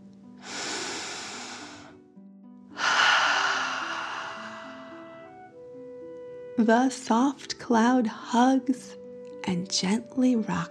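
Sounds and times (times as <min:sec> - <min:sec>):
deep breathing in and out: 0:00.4 - 0:02.0, 0:02.8 - 0:05.4
speech: 0:06.6 - 0:10.6.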